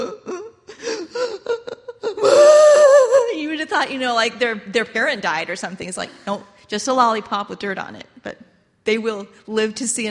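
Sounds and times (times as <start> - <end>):
person imitating toddler belly sob with gasping breaths and wail: 0.0 - 3.4
speech: 3.8 - 10.0.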